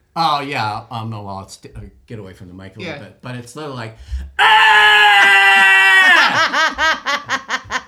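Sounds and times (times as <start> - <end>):
speech: 0.2 - 7.6
person imitating a scream with a high-pitched wail: 4.4 - 6.4
laughter: 5.2 - 7.8.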